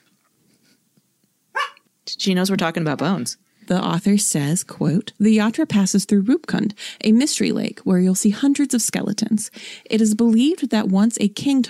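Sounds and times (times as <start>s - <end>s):
dog barking: 1.5s - 1.8s
speech: 2.2s - 11.6s.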